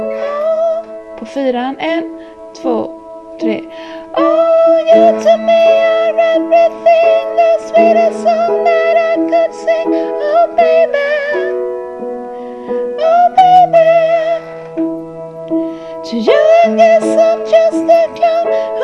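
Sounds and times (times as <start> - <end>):
tenor voice part singing: 0.2 - 11.6, 13.0 - 14.5, 16.0 - 18.8.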